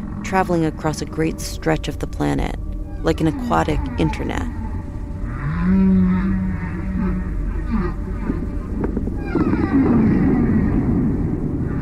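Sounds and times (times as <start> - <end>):
blue whale song: 0.0 - 11.8
speech: 0.3 - 4.6, 5.7 - 6.5
underwater rumble: 2.6 - 11.8.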